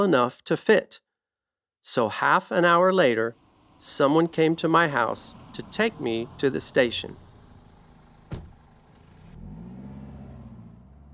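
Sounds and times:
speech: 0.0 - 1.0, 1.8 - 7.2
car engine starting and rumbling as the vehicle pulls away: 2.9 - 11.1
car door thudding shut: 8.1 - 9.2.

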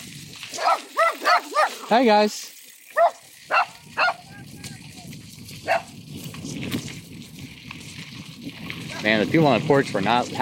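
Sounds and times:
small dogs barking: 0.5 - 1.9, 2.9 - 4.4, 5.6 - 6.0
speech: 1.9 - 2.6, 9.0 - 10.4.

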